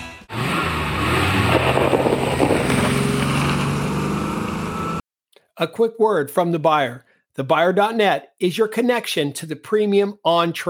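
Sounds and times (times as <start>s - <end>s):
pickup truck engine revving as the vehicle drives: 0.3s - 5.0s
speech: 5.6s - 10.6s.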